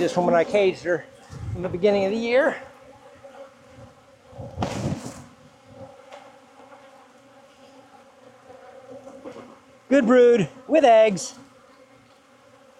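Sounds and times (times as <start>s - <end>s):
speech: 0.0s - 2.7s, 9.9s - 11.4s
louder rustling burst: 0.0s - 9.7s
many honeybees buzzing around an open hive: 0.0s - 12.7s.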